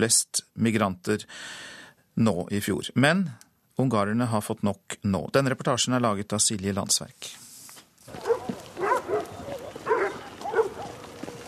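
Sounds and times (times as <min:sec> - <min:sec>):
speech: 0:00.0 - 0:07.4
faint rustling: 0:07.2 - 0:11.4
dogs barking: 0:08.1 - 0:11.4.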